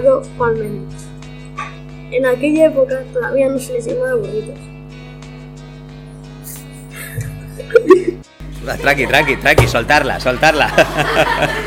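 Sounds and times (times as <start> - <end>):
speech: 0.0 - 4.7, 7.8 - 11.6
hiccups: 1.6 - 1.8
laughter: 6.5 - 11.6.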